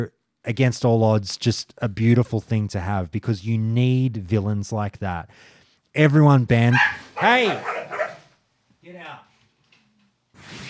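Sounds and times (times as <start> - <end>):
speech: 0.0 - 8.0
dog yelping as cat attacks it: 6.7 - 8.3.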